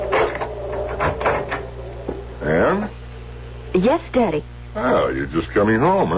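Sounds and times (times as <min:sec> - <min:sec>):
house front door hinge creaking: 0:00.0 - 0:02.3
speech: 0:03.8 - 0:06.1.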